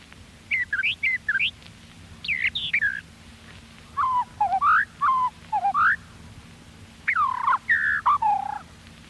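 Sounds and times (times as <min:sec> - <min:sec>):
brown thrasher singing in the woods: 0:00.5 - 0:01.6, 0:02.2 - 0:03.0, 0:04.0 - 0:06.0, 0:07.1 - 0:08.6.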